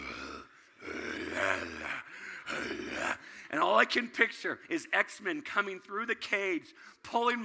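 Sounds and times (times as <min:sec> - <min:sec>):
voice imitating a man's loud heavy breathing: 0:00.0 - 0:03.5
speech: 0:03.5 - 0:07.4.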